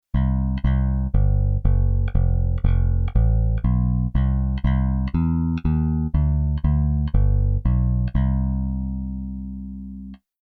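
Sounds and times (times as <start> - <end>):
reggae bass: 0.1 - 10.2.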